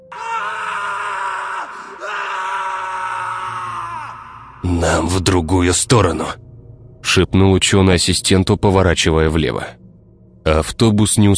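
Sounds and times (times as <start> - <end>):
furious dying scream from a forest: 0.0 - 5.2
speech: 4.6 - 6.4, 7.1 - 9.8, 10.5 - 11.3.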